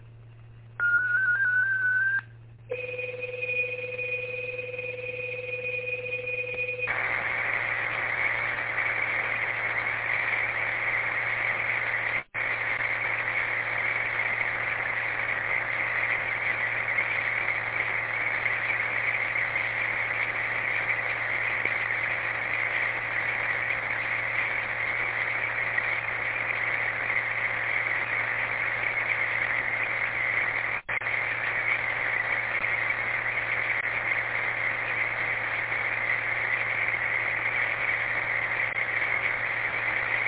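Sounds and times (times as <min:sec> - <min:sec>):
low hum: 0:00.0 - 0:40.2
sustained whistling data tones over a radio repeater: 0:00.8 - 0:02.3.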